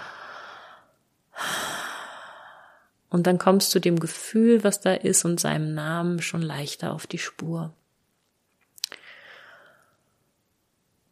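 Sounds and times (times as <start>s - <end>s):
deep slow breaths: 0.0s - 2.9s, 9.0s - 10.1s
speech: 3.1s - 7.8s.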